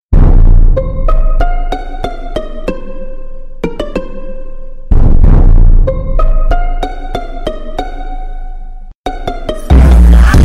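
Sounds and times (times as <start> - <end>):
bass boosted trap remix: 0.2 - 2.5, 4.9 - 7.6, 9.3 - 10.4.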